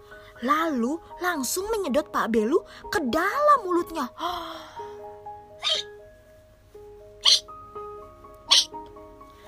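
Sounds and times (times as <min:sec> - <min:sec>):
soft steady gentle musical tones: 0:00.0 - 0:09.4
speech: 0:00.4 - 0:04.7
sharp loud whale hiccups: 0:05.6 - 0:05.9, 0:07.2 - 0:07.5, 0:08.5 - 0:08.7.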